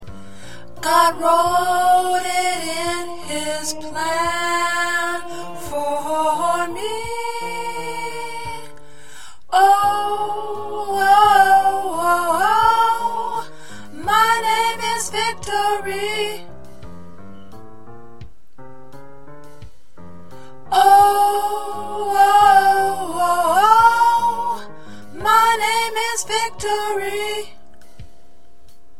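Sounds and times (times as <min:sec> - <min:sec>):
alto choir part singing: 0:00.8 - 0:08.8, 0:09.5 - 0:16.5, 0:20.7 - 0:27.6.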